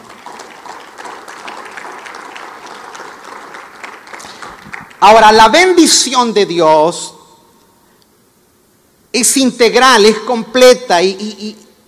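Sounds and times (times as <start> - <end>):
congregation applauding: 0.0 - 5.0
speech: 5.0 - 7.2, 9.2 - 11.6.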